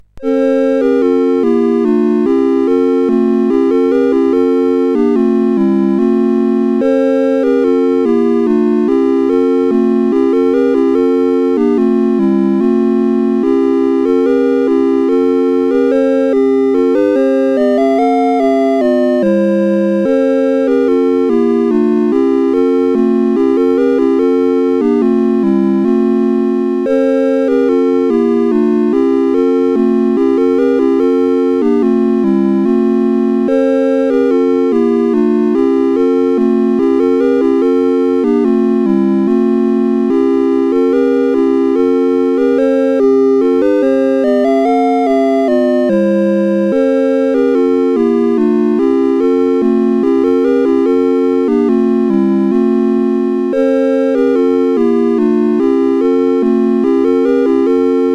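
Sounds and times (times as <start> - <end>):
carol melody: 0.0 - 58.1.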